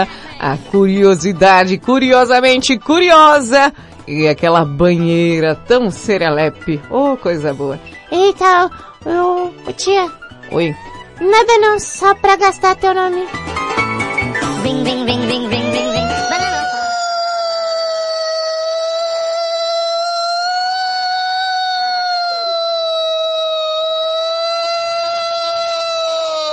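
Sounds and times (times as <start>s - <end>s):
speech: 0.0s - 13.8s, 14.6s - 16.2s
loud siren wailing: 15.5s - 26.4s.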